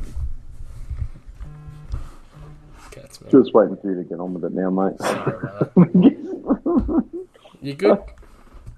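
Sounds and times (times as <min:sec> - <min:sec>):
mobile phone vibrating: 0:00.9 - 0:03.0
speech: 0:02.9 - 0:08.2
laughter: 0:04.9 - 0:07.4.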